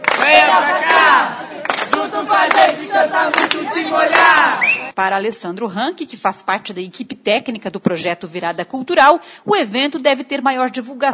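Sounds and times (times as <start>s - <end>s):
faint claps: 0.0s - 4.8s
large concert audience in the rain cheering and shouting: 0.0s - 5.0s
speech: 2.4s - 11.1s.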